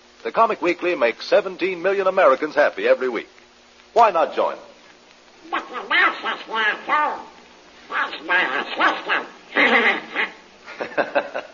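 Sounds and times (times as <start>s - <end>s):
speech: 0.2s - 4.7s, 5.4s - 7.3s, 7.9s - 10.2s, 10.9s - 11.5s
person imitating a cartoon duck voice quacking: 5.4s - 10.4s
laughter: 9.5s - 11.5s.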